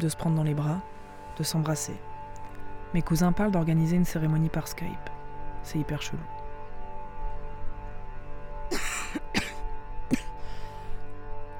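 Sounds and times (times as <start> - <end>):
speech: 0.0 - 2.1, 2.9 - 6.4
person coughing: 8.7 - 10.4.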